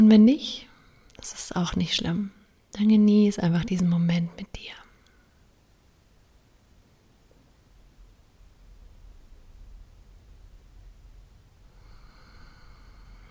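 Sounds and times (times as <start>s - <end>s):
speech: 0.1s - 4.8s
slow deep breath during guided meditation: 11.6s - 13.2s.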